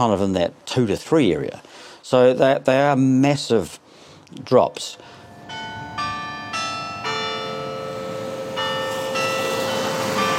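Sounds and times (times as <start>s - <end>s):
speech: 0.0s - 5.2s
courthouse clock tower bells chiming: 5.0s - 10.3s.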